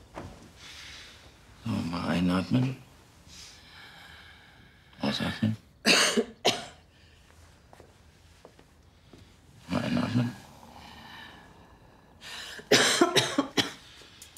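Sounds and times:
speech: 1.7 - 2.8, 5.2 - 5.7
person coughing during a medical examination: 5.8 - 6.8, 12.7 - 13.8.

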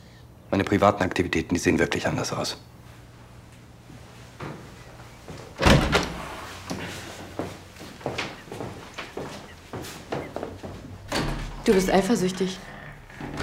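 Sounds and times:
speech: 0.5 - 2.8, 11.7 - 12.7
door swinging shut with a solid thud: 5.6 - 6.4, 11.0 - 12.1, 13.1 - 13.4.

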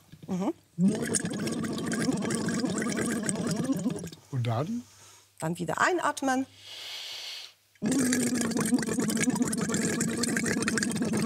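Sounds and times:
speech: 0.3 - 1.6, 4.4 - 6.9, 7.8 - 9.1
bubbling through a tube into water: 0.8 - 4.2, 7.8 - 11.2.

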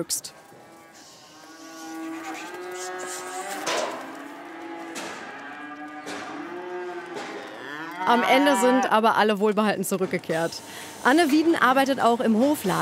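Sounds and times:
speech: 0.0 - 0.4, 8.1 - 12.8
young cattle mooing while driven onto a transport trailer: 0.7 - 9.0
sharp knocks: 4.9 - 5.4, 6.0 - 6.4, 7.1 - 7.4.

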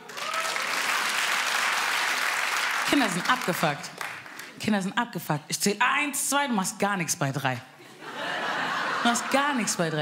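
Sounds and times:
audience applause: 0.0 - 4.5
speech: 2.9 - 4.0, 4.6 - 7.7, 9.0 - 10.0
laughter: 7.8 - 10.0.

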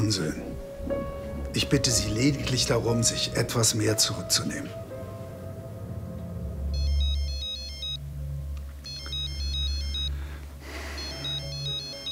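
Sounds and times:
speech: 0.0 - 4.9
low steady hum: 0.0 - 11.9
mobile phone ringtone of bright electronic beeps: 6.7 - 8.0, 8.8 - 10.2, 10.8 - 12.1.

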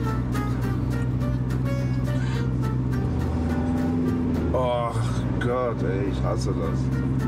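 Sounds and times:
car engine drone creeping down a steep grade toward a campsite: 0.0 - 7.2
speech: 5.8 - 7.2.

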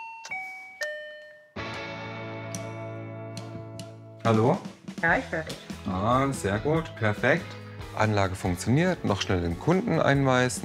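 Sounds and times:
doorbell ringing with a ding-dong chime of falling tones: 0.0 - 1.6
speech: 4.2 - 10.6.

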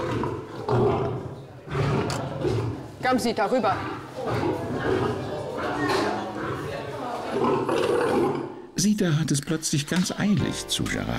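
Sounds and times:
lion roaring: 0.0 - 8.7
speech: 3.0 - 4.7, 8.8 - 11.1.

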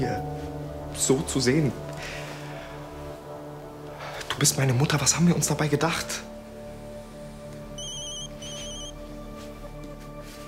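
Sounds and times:
speech: 1.0 - 2.2, 4.4 - 6.3
incoming call telephone ringtone trilling: 7.8 - 8.9.

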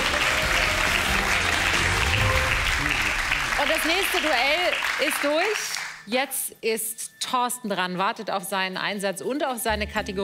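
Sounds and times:
audience applause: 0.0 - 6.0
speech: 3.8 - 10.2.

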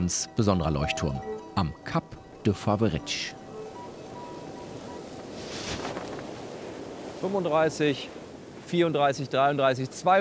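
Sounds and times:
speech: 0.0 - 3.4, 7.2 - 10.1
strong blustery wind roaring across an open outdoor space by the sea on Menorca: 2.1 - 10.1.

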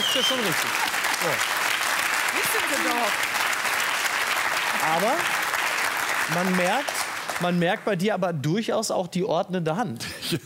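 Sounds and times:
audience applause: 0.0 - 8.0
speech: 0.1 - 1.7, 2.3 - 3.4, 4.8 - 5.4, 6.3 - 10.4.

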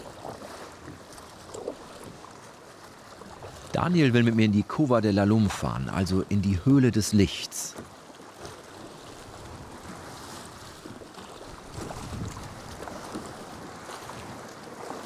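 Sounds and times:
choppy water splashing against a small boat's hull entering a sea cave: 0.0 - 15.0
constant wash of waves: 0.0 - 15.0
speech: 3.8 - 7.8
wind buffeting the microphone: 11.6 - 13.6.

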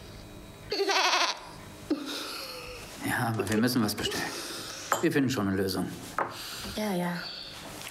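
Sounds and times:
goat bleating: 0.7 - 1.5
speech: 3.2 - 4.4, 5.0 - 6.2, 6.8 - 7.4.

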